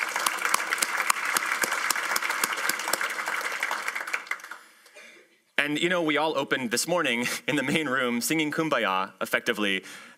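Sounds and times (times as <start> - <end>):
crowd applauding: 0.0 - 5.0
speech: 5.7 - 10.1.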